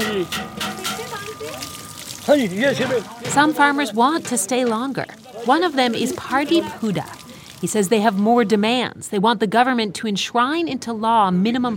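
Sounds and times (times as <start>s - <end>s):
speech: 0.0s - 0.7s, 2.3s - 11.7s
water pouring and sloshing as a man washes laundry by hand at a water tank: 0.0s - 8.6s.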